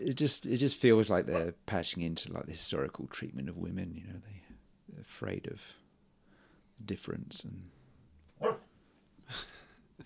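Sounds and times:
speech: 0:00.1 - 0:04.4, 0:05.0 - 0:05.8, 0:06.8 - 0:07.8, 0:09.3 - 0:09.5
dog barking: 0:01.3 - 0:01.5, 0:08.4 - 0:08.7.

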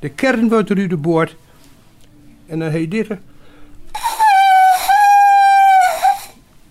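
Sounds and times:
speech: 0:00.0 - 0:01.5, 0:02.5 - 0:03.3
shrill wooden whistle blown: 0:04.0 - 0:06.4.

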